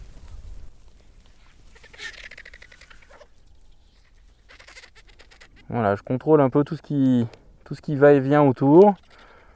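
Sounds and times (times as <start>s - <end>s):
flock of griffon vultures calling: 1.4s - 5.9s
speech: 5.7s - 9.0s.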